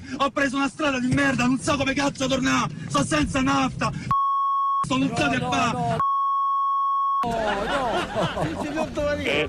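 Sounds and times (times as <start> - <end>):
speech: 0.2 - 4.2, 4.9 - 6.0, 7.2 - 9.4
high-pitched censorship bleep: 4.1 - 5.2, 6.0 - 7.3
person talking animatedly: 4.9 - 6.0
laughter: 7.2 - 9.4.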